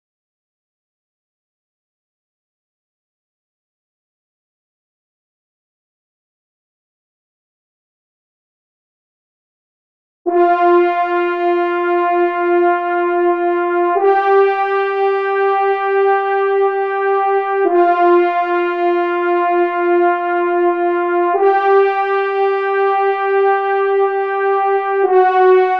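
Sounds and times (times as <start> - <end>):
horn in Eb: 10.3 - 25.7.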